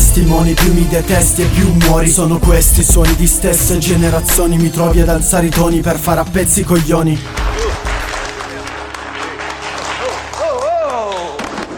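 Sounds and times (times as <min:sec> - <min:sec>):
speech: 0:00.2 - 0:07.6
applause: 0:07.2 - 0:11.7.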